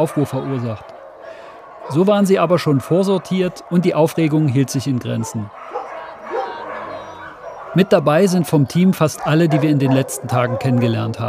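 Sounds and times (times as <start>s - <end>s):
speech: 0.0s - 0.9s, 1.9s - 5.6s, 7.7s - 11.2s
dogs barking in animal shelter runs: 0.0s - 11.2s.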